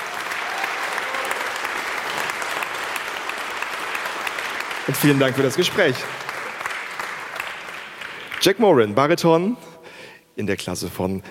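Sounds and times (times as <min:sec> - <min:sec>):
audience applause: 0:00.0 - 0:08.6
speech: 0:04.9 - 0:06.2, 0:08.4 - 0:09.7, 0:10.4 - 0:11.2.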